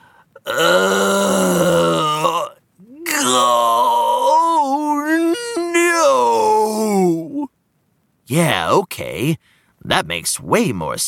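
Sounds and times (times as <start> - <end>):
speech: 0.4 - 1.0, 8.3 - 11.0
person with a throbbing toe groaning in disappointment: 0.4 - 7.5.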